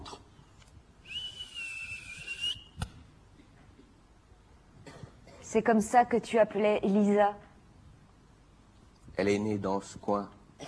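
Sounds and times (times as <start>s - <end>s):
man on a terrace whistling a distinctive call: 1.0s - 2.8s
speech: 5.5s - 7.5s, 9.2s - 10.4s.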